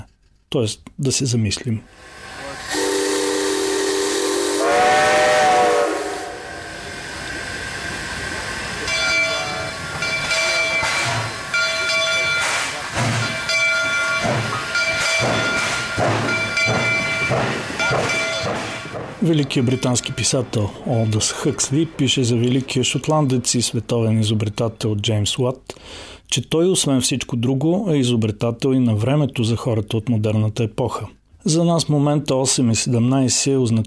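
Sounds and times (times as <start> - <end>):
speech: 0.5 - 2.2, 19.2 - 33.8
bursts of hissing steam from a departing steam engine: 1.9 - 20.0
steam train whistle bending upward in pitch: 2.0 - 7.7, 8.9 - 12.6.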